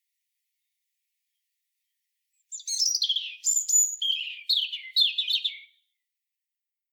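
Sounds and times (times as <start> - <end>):
European robin tinkling song phrase: 2.5 - 5.8.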